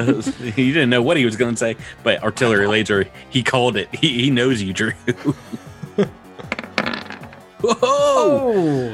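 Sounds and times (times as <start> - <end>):
laughter: 0.0 - 0.6, 5.1 - 6.2, 7.6 - 8.9
speech: 0.0 - 6.2, 7.6 - 8.9
dice clattering across a hard table: 6.4 - 7.5.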